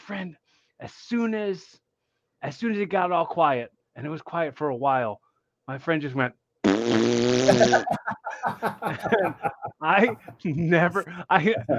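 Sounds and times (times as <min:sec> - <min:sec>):
speech: 0:00.1 - 0:01.8, 0:02.4 - 0:11.7
loud buzzy fart noise blown with the lips: 0:06.6 - 0:08.0
people laughing: 0:07.4 - 0:11.7.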